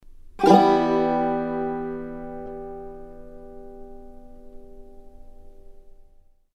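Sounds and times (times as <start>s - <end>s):
banjo playing in E minor: 0.4s - 5.1s.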